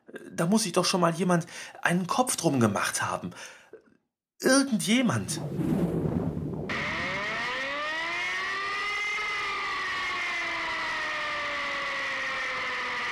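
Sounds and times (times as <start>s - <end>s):
speech: 0.4s - 3.6s, 4.4s - 6.1s
E57 electromechanical fire brigade siren wailing: 6.6s - 13.1s.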